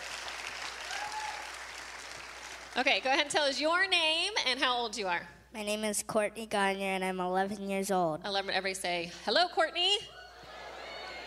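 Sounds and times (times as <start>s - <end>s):
audience applause: 0.0s - 2.8s
speech: 2.8s - 10.2s.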